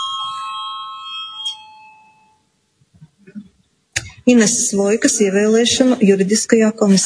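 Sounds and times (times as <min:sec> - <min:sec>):
bell rung during a parliament session: 0:00.0 - 0:02.5
speech: 0:04.3 - 0:07.0.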